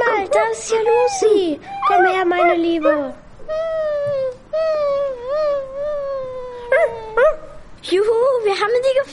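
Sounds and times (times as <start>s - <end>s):
speech: 0.4s - 4.7s, 6.8s - 9.1s
dog whining and howling: 0.7s - 4.1s, 4.8s - 7.6s.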